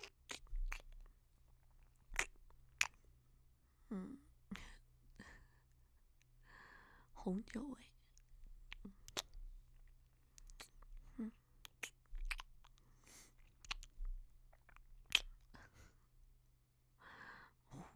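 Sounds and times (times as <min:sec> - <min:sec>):
wet chewing of gum: 0:00.0 - 0:03.2, 0:07.5 - 0:15.8
speech: 0:07.2 - 0:07.9.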